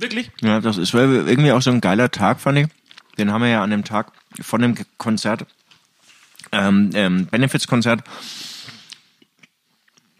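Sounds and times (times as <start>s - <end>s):
speech: 0.0s - 5.6s, 6.5s - 8.5s
someone chewing and swallowing food: 2.7s - 3.4s, 4.0s - 4.5s, 5.4s - 6.6s, 8.6s - 10.1s
burst of hiss: 8.1s - 8.9s.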